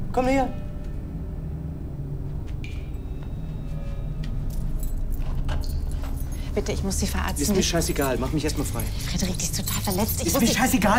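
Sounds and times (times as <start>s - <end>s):
steady low engine-like rumble: 0.0s - 10.9s
speech: 0.2s - 0.6s, 6.6s - 10.9s
keys jingling: 4.2s - 10.8s.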